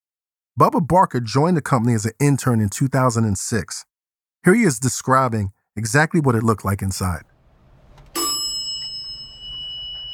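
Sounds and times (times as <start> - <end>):
speech: 0.6 - 7.3
single bright metallic bell ding: 8.2 - 10.1.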